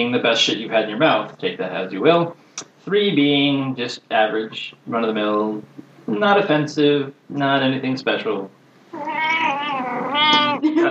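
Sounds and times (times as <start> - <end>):
speech: 0.0 - 9.0
cat meowing: 8.9 - 10.6.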